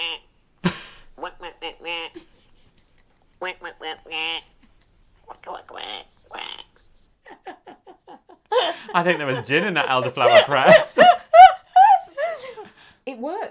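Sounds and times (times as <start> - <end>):
woman imitating mother duck quacking to coax a duckling out of a hedge: 1.2 - 2.4, 3.4 - 4.4, 5.3 - 6.7
laughter: 7.3 - 12.7
speech: 9.0 - 10.9.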